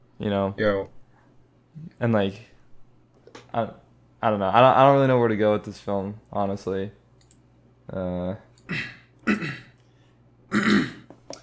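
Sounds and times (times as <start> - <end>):
speech: 0.2 - 1.0, 1.8 - 2.5, 3.5 - 7.0, 7.9 - 9.6
person clearing throat: 0.6 - 0.9, 8.7 - 9.8, 10.5 - 11.2.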